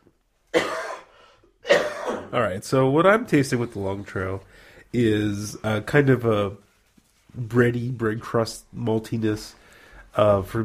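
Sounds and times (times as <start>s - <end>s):
sharp cough to clear the throat: 0.5s - 2.4s
speech: 2.3s - 6.6s, 7.4s - 10.6s.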